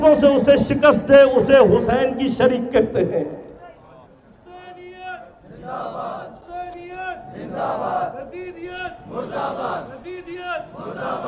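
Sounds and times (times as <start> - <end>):
speech: 0.0 - 3.5, 7.6 - 11.2
large crowd chanting religious slogans in unison: 5.4 - 11.2.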